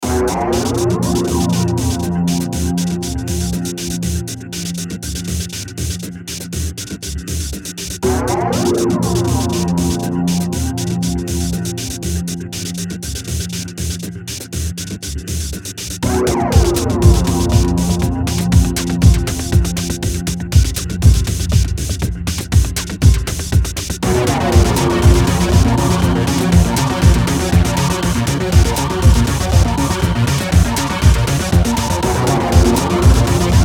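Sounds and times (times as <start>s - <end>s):
eerie techno groove beat loop: 0.0s - 33.6s.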